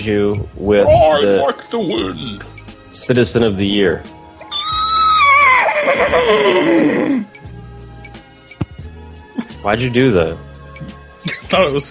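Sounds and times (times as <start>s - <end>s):
speech: 0.0s - 4.2s, 5.8s - 7.6s, 9.6s - 11.8s
horse neighing: 4.4s - 7.4s.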